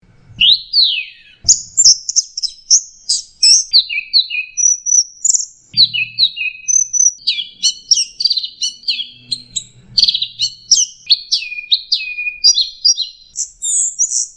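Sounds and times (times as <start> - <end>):
bird song of bright chirps and sweeping whistled notes: 0.4 - 14.3
low thumps: 5.8 - 6.3.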